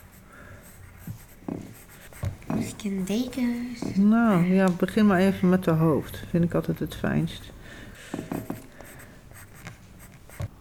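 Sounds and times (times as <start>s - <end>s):
pen strokes scratching across paper: 0.0s - 5.4s, 8.2s - 10.5s
speech: 2.8s - 7.6s.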